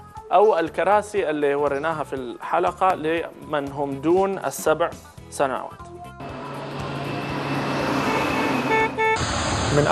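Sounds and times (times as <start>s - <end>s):
speech: 0.3s - 5.9s, 9.7s - 9.9s
car coming up on the yellow-line emergency lane: 6.2s - 9.9s
steady roar of road traffic: 6.2s - 9.9s
short loud car horn blasts: 7.9s - 9.2s.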